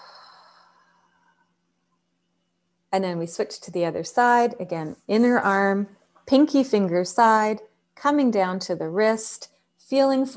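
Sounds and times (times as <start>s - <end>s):
slow deep breath: 0.0s - 1.5s
speech: 2.9s - 10.3s.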